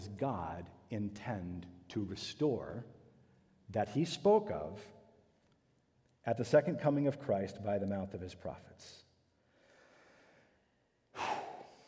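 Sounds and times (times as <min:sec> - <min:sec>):
speech: 0:00.2 - 0:03.0, 0:03.7 - 0:05.0, 0:06.2 - 0:09.0
person taking a sudden airy breath: 0:09.5 - 0:11.8.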